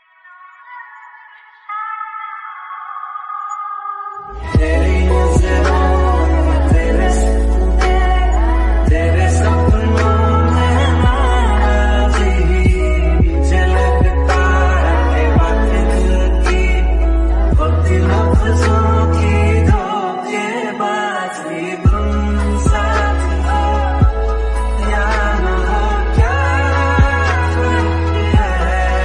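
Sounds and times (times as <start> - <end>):
female love song ringtone: 0.2 - 29.0.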